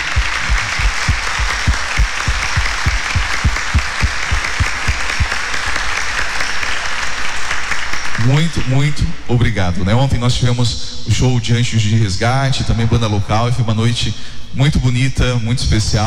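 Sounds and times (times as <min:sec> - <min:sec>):
audience applause: 0:00.0 - 0:08.2
speech: 0:08.3 - 0:16.0.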